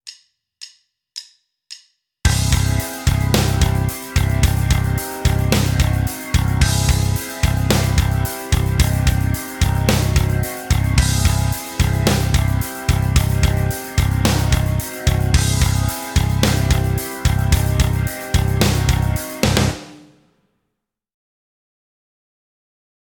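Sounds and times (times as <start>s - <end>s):
backing track: 2.3s - 20.2s.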